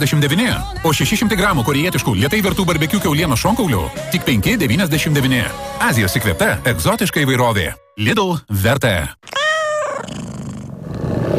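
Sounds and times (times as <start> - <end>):
speech: 0.0 - 9.4
tiger growl sound effect in an advertisement: 9.9 - 11.3.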